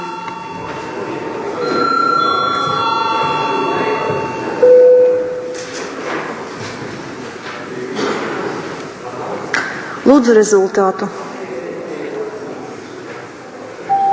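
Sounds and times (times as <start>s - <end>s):
electric bell ringing in a parliament chamber: 0.0s - 5.6s, 13.9s - 14.1s
brief louder low tone: 0.0s - 5.8s, 13.9s - 14.1s
low room noise in a parliament chamber: 0.0s - 14.1s
speech: 10.1s - 11.2s.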